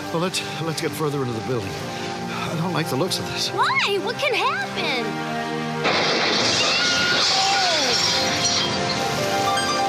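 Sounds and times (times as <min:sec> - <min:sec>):
speech: 0:00.1 - 0:06.7
glass shattering: 0:05.9 - 0:09.7.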